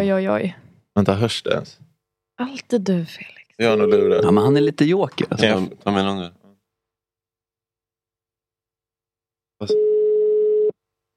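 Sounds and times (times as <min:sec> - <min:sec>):
speech: 0:00.0 - 0:01.8, 0:02.4 - 0:06.4, 0:09.6 - 0:09.9
telephone ringing tone while placing a call: 0:03.7 - 0:04.4, 0:09.7 - 0:10.7.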